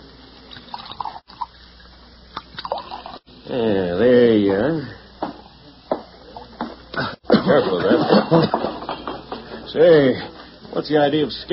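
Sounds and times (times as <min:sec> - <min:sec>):
liquor poured from a bottle into a glass: 0:00.5 - 0:03.2
speech: 0:03.5 - 0:05.0, 0:09.7 - 0:11.5
laughter: 0:07.3 - 0:09.5.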